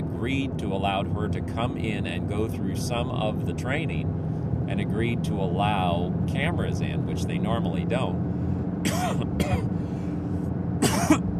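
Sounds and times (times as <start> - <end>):
low rumble: 0.0 - 11.3
speech: 0.2 - 9.9
person coughing: 8.9 - 9.7, 10.8 - 11.3
throat clearing: 8.9 - 9.7, 10.8 - 11.3.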